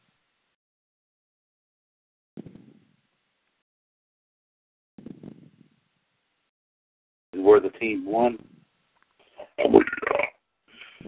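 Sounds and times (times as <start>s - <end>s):
speech: 7.4s - 8.5s, 9.6s - 10.1s
loud drawn-out belch: 9.5s - 10.3s.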